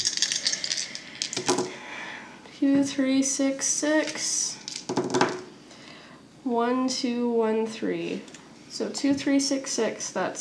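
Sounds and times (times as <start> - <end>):
six-sided dice clattering across a tabletop: 0.0 - 1.7, 4.0 - 5.5
speech: 2.6 - 4.4, 6.5 - 10.3.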